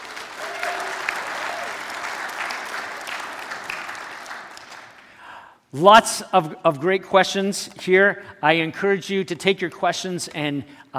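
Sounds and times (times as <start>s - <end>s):
steady applause from a large audience: 0.0s - 5.1s
speech: 5.7s - 10.9s.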